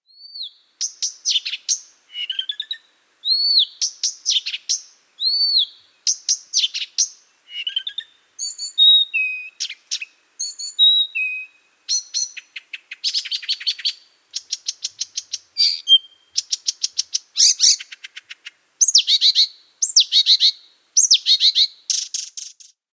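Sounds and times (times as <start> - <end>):
Blyth's reed warbler singing: 0.0 - 22.8.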